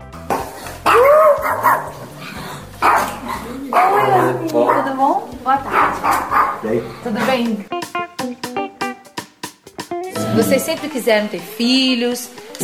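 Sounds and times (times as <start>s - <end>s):
small family dog barking in the Plano Piloto Brasilia: 0.3s - 7.4s
speech: 6.7s - 7.8s, 10.4s - 12.6s.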